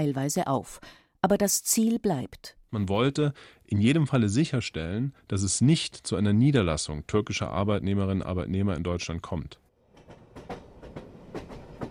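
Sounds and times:
speech: 0:00.0 - 0:09.6
train clattering along rails: 0:09.8 - 0:11.8.

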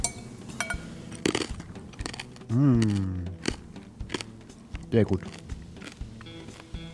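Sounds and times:
knife clinking against the plate: 0:00.0 - 0:00.9
crisp rind of roast pork crunching: 0:01.2 - 0:06.9
speech: 0:02.5 - 0:03.3, 0:04.9 - 0:05.4.

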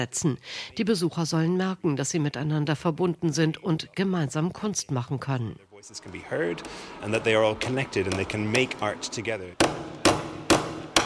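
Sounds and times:
speech: 0:00.0 - 0:09.8
hammer striking nails into a wooden board: 0:09.6 - 0:11.0.

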